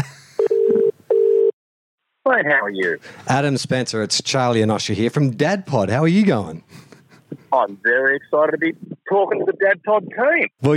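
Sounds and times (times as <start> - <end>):
telephone call dialed with electronic ringing tones: 0.4 - 1.5
speech: 2.3 - 6.9, 7.5 - 10.7.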